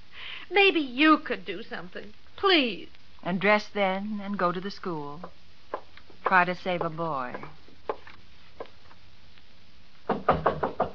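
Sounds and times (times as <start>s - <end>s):
speech: 0.5s - 5.4s, 6.3s - 7.6s
knocking on a door: 10.1s - 10.9s.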